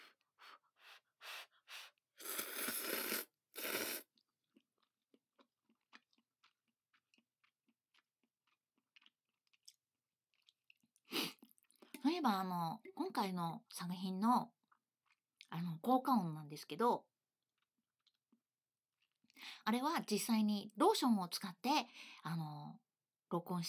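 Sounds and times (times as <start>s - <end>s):
person chewing messy juicy food: 1.8s - 12.0s, 14.6s - 15.2s, 17.6s - 18.4s, 19.0s - 19.4s
speech: 12.2s - 14.6s, 15.5s - 17.1s, 19.7s - 23.6s.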